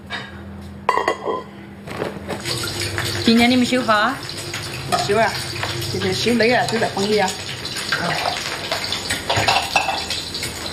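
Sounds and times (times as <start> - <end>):
metal cooking pot clanking as it is handed over: 2.4 - 10.7
speech: 3.3 - 7.4, 8.0 - 8.4.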